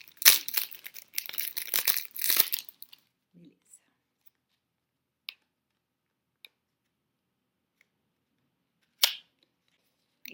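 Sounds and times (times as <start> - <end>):
plastic wrap on a small card-deck box torn open with a ruler: 0.0 - 3.1.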